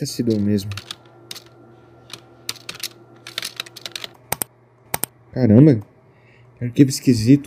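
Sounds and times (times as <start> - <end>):
speech: 0.0 - 0.9, 5.4 - 5.9, 6.6 - 7.4
steady low electrical hum: 0.0 - 7.4
computer keyboard typing: 0.2 - 5.1.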